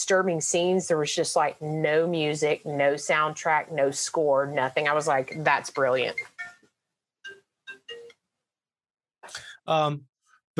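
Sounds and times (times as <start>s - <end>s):
speech: 0.0s - 6.3s, 9.7s - 10.5s
mobile phone ringtone chiming in short bright melodic bursts: 5.3s - 6.6s, 7.3s - 8.1s.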